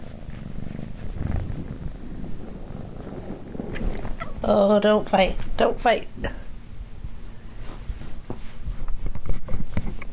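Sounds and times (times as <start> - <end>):
cat purring while another cat licks her: 0.0 - 5.8
speech: 4.5 - 6.4.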